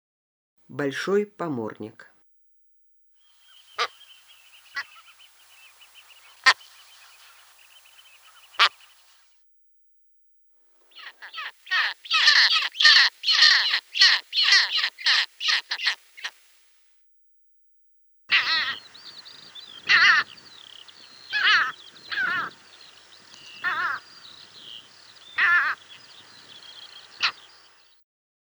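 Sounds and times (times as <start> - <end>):
great skua calling: 3.4 - 9.2, 10.9 - 16.6, 18.3 - 27.9.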